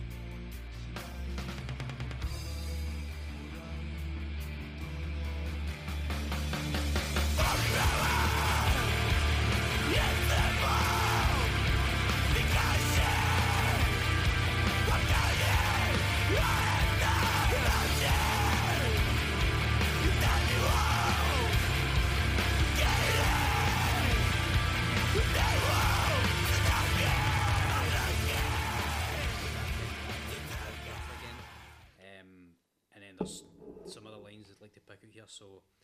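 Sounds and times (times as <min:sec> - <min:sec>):
dense loud wall of distorted guitars: 0:00.0 - 0:31.6
harsh screamed vocals in a screamo song: 0:07.4 - 0:09.1, 0:09.7 - 0:11.6, 0:12.2 - 0:14.0, 0:14.7 - 0:19.1, 0:20.0 - 0:21.6, 0:22.7 - 0:24.3, 0:25.1 - 0:29.5, 0:30.4 - 0:31.8.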